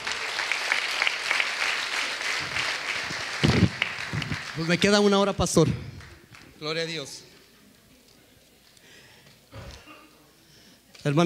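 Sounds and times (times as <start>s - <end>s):
audience clapping at a church service: 0.0s - 7.2s
speech: 4.6s - 5.9s, 6.6s - 7.3s, 11.0s - 11.2s.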